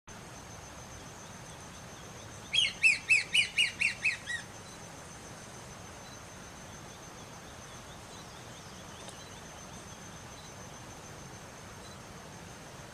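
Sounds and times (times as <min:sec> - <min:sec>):
flautim pardo singing: 0:01.0 - 0:04.8, 0:06.0 - 0:10.7.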